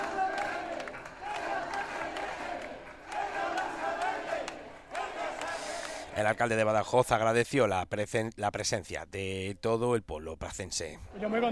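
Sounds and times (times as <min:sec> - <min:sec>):
large crowd chanting in unison at a protest rally: 0:00.0 - 0:06.5
speech: 0:06.2 - 0:11.5.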